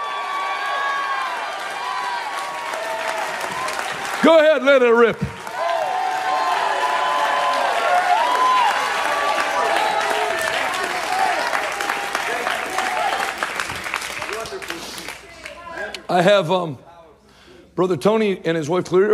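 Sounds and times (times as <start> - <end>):
large audience shouting, cheering and whooping: 0.0 - 4.6, 5.2 - 14.0
large audience clapping: 0.0 - 15.8
speech: 4.2 - 5.4, 16.1 - 16.9, 17.8 - 19.1.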